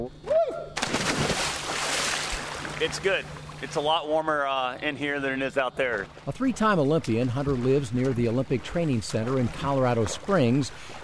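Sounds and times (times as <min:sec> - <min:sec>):
speech: 0:00.0 - 0:00.3, 0:02.8 - 0:11.0
splash of person jumping into pool: 0:00.8 - 0:02.9
churning bubbling pool water: 0:00.8 - 0:04.0, 0:06.0 - 0:11.0.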